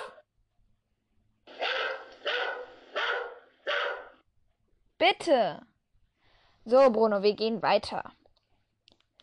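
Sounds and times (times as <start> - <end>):
dog barking: 1.5 - 4.2
speech: 5.0 - 5.7, 6.6 - 8.2.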